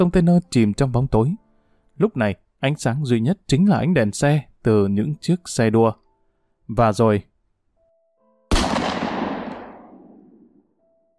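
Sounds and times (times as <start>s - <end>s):
speech: 0.0s - 1.4s, 2.0s - 6.0s, 6.7s - 7.3s
gunshot from real ammunition echoing below a container yard at night: 8.5s - 10.6s.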